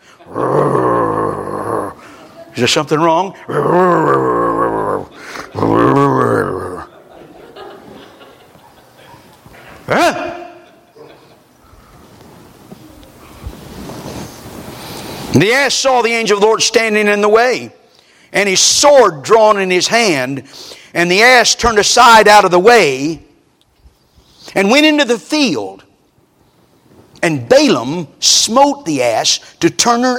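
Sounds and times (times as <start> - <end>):
person growling like a dog: 0.3 - 2.1, 3.5 - 6.9
speech: 2.6 - 4.4, 15.4 - 23.2, 24.5 - 25.8, 27.2 - 30.1
laughter: 5.0 - 11.6.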